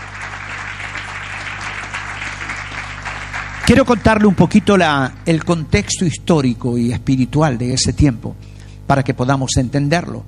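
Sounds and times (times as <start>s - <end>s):
crowd applauding in a large room: 0.0s - 5.6s
low steady hum: 0.0s - 10.2s
speech: 3.7s - 10.2s.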